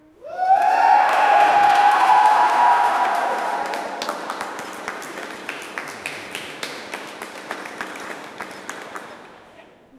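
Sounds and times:
crowd at an indoor swimming pool: 0.0 - 9.9.

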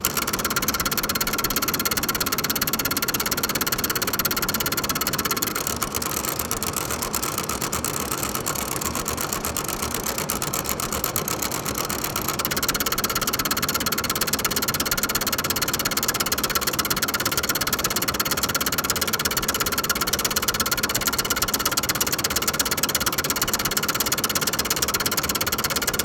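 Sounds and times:
ticker tape machine ticking: 0.0 - 26.0.

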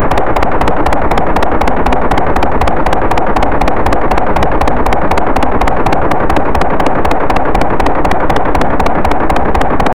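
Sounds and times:
Kriss Vector submachine gun firing: 0.0 - 9.9.

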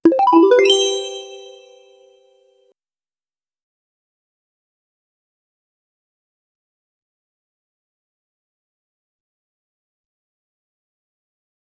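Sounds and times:
replay or try again sound effect: 0.0 - 1.9.

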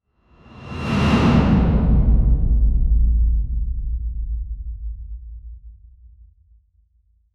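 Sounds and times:
deep ominous dark swoosh energy sweep: 0.3 - 4.0.

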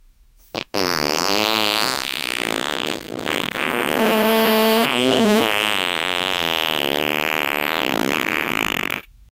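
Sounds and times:
fat man farting: 0.5 - 9.1.

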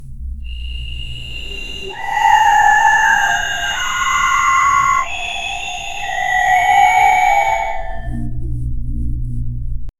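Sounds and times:
spooky ghost whispers: 0.4 - 8.4.

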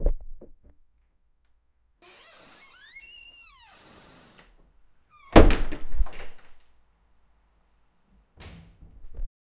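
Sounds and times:
door opening: 2.0 - 4.6, 5.2 - 6.6, 8.4 - 9.2.

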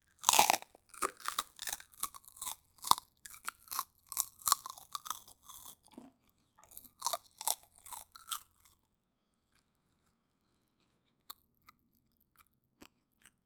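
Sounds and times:
crunch of biting: 0.1 - 6.0, 6.6 - 8.8.

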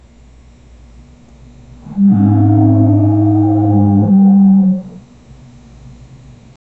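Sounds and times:
monster alligator hissing: 1.8 - 5.0.

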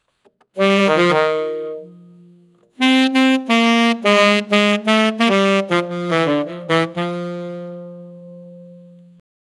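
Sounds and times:
short saxophone riff: 0.6 - 9.2.

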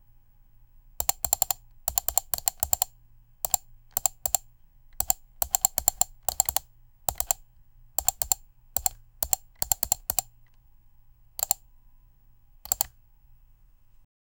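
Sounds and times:
continuous fast computer mouse clicking: 1.0 - 2.9, 3.5 - 4.4, 5.0 - 7.4, 8.0 - 10.6, 11.4 - 11.6, 12.7 - 13.0.

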